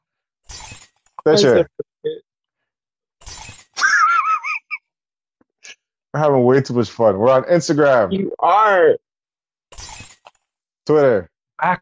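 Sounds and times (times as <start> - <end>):
voice imitating glass shattering: 1.2 - 1.8, 3.4 - 4.6
speech: 1.2 - 2.2, 6.1 - 9.0, 10.9 - 11.8.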